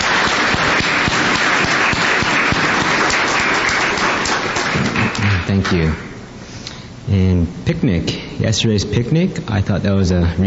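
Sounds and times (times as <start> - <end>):
crowd applauding at a Youth Day: 0.0 - 6.0
speech: 5.7 - 6.1, 7.1 - 10.4.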